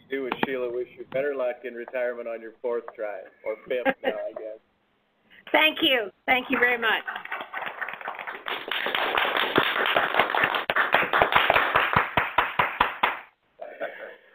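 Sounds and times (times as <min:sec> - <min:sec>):
faint murmur of room noise: 0:00.0 - 0:14.3
speech: 0:00.8 - 0:04.6, 0:05.5 - 0:07.3
group applause echoing in a reverberant hall: 0:06.4 - 0:13.3.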